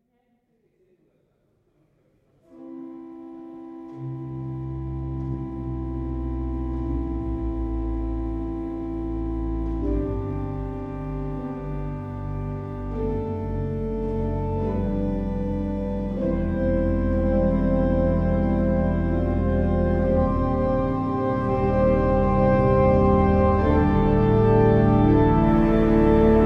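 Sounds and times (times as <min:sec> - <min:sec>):
organ: 0:02.5 - 0:26.4.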